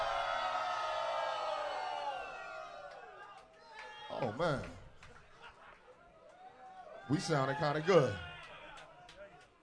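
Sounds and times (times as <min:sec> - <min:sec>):
large concert audience screaming and cheering: 0:00.0 - 0:03.2
speech: 0:04.2 - 0:04.8, 0:07.1 - 0:08.3.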